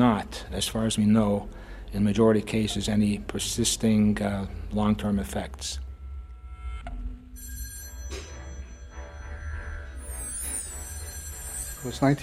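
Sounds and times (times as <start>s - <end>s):
speech: 0.0s - 5.8s, 11.8s - 12.2s
steady low hum: 2.5s - 12.2s
telephone ringing with a warbling electronic tone: 7.3s - 12.2s.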